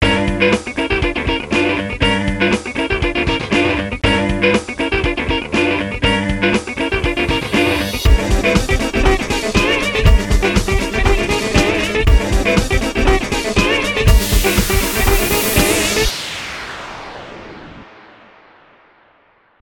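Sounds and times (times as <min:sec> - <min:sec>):
funky casual electric guitar: 0:00.0 - 0:16.1.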